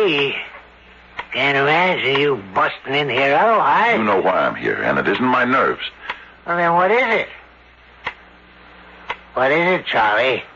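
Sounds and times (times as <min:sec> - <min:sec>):
clock ticking: 0:00.0 - 0:00.5, 0:01.1 - 0:04.1
speech: 0:00.0 - 0:00.6, 0:01.3 - 0:07.4, 0:09.4 - 0:10.5
faint constant hiss: 0:00.0 - 0:10.5.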